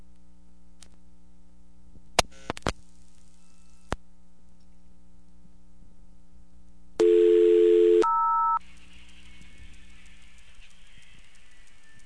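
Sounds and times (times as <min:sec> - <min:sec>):
payphone line hum: 0:07.0 - 0:08.6
loud steady electronic tone as the call connects: 0:07.0 - 0:12.0.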